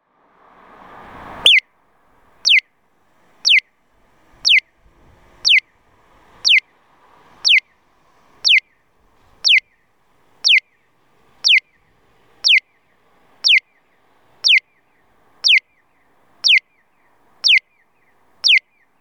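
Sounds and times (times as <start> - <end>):
piyo crossing signal chirping at an intersection in Moriyama Aichi: 1.4 - 1.7, 2.4 - 2.7, 3.4 - 5.8, 6.4 - 6.7, 7.4 - 8.8, 9.4 - 9.8, 10.4 - 10.8, 11.4 - 15.8, 16.4 - 16.8, 17.4 - 17.8, 18.4 - 18.8.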